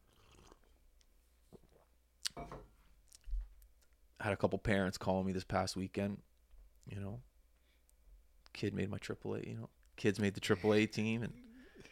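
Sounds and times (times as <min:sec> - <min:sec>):
person sipping coffee: 0:00.0 - 0:00.8
speech: 0:04.2 - 0:07.3, 0:08.6 - 0:11.9.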